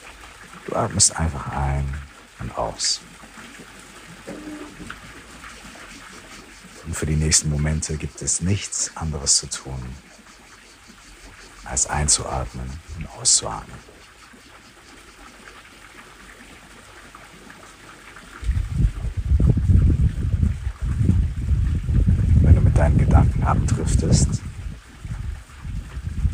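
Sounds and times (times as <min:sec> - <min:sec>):
person speaking softly in a calm voice: 0:00.7 - 0:03.0, 0:06.8 - 0:10.0, 0:11.6 - 0:13.9, 0:22.4 - 0:24.4
speech: 0:00.7 - 0:03.7, 0:07.0 - 0:10.2, 0:11.7 - 0:14.1, 0:23.5 - 0:24.4
strong gusty wind: 0:18.4 - 0:26.3.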